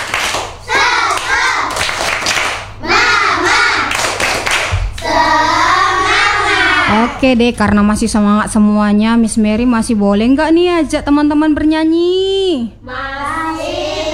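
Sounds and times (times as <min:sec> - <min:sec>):
group of children doing a rhythmic spirit clap: 0:00.0 - 0:07.2
group of children chanting loudly together: 0:00.0 - 0:07.4, 0:12.9 - 0:14.1
speech: 0:07.2 - 0:13.8.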